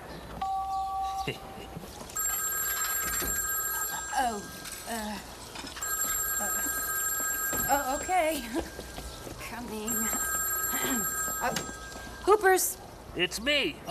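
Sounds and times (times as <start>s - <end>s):
speech: 1.2s - 1.5s, 7.9s - 9.0s, 9.6s - 10.1s, 12.4s - 13.8s
new cellular telephone ringing with a bright electronic tone: 2.2s - 12.7s.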